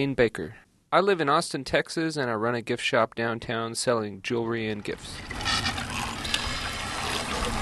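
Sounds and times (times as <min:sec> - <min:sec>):
speech: 0:00.0 - 0:05.4
water sloshing and gurgling in corrugation flutes of a corrugated plastic origami boat: 0:04.8 - 0:07.6
small splashes: 0:05.2 - 0:07.6.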